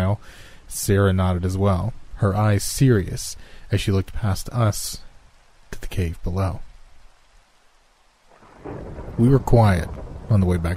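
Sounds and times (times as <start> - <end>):
steady dense rain: 0.0 - 10.7
speech: 0.1 - 5.1, 5.8 - 6.7, 8.6 - 10.7
low thunder rumble: 8.3 - 10.7.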